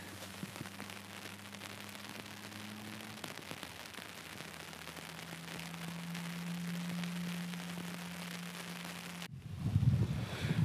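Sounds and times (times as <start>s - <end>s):
steady broadband hiss of rain: 0.0s - 9.3s
rumbling wind buffeting the microphone: 9.3s - 10.6s.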